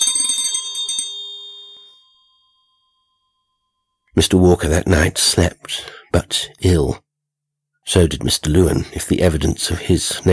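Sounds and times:
small bell ringing: 0.0 - 4.1
speech: 4.2 - 7.0, 7.9 - 10.3.

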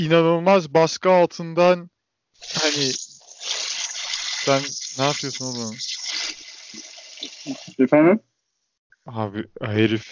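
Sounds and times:
speech: 0.0 - 3.6, 4.4 - 6.0, 7.4 - 8.3, 9.0 - 10.1
water running from a tap: 2.4 - 7.8.

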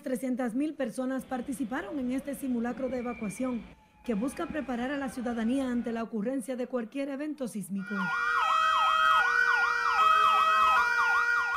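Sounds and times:
speech: 0.0 - 8.4
emergency vehicle sirens wailing: 1.4 - 6.0, 7.8 - 11.5.

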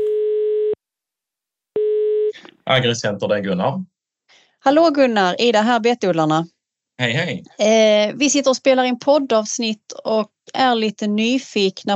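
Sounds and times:
telephone ringing tone while calling a farm supplier: 0.0 - 0.8, 1.8 - 2.4
speech: 2.7 - 3.9, 4.6 - 11.9.

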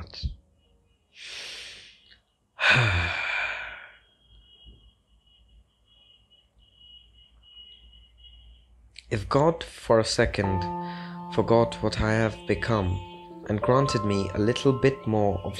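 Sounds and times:
speech: 0.1 - 0.4, 9.1 - 15.5
person taking a deep breath: 1.2 - 4.0, 10.8 - 11.2.

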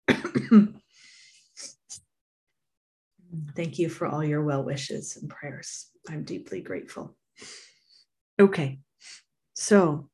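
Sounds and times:
person coughing: 0.0 - 0.8
speech: 0.5 - 0.8, 3.6 - 7.6, 8.4 - 10.1.

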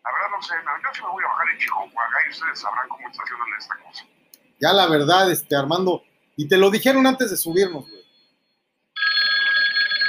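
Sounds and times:
speech: 0.3 - 8.0
mobile phone ringing on board an aircraft: 7.3 - 10.0.

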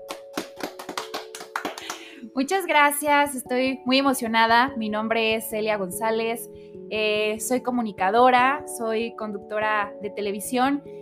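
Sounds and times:
hand clapping applause from a small group: 0.0 - 2.1
speech: 2.4 - 10.9.

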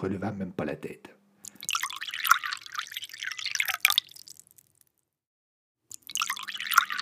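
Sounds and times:
speech: 0.0 - 1.2
liquor gurgling from a bottle into a glass: 1.5 - 4.9, 5.9 - 7.0.

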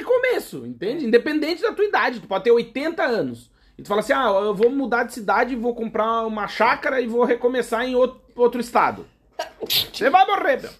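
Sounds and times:
speech: 0.5 - 10.7
short laugh: 9.4 - 10.1
single sharp sneeze: 9.4 - 10.1.

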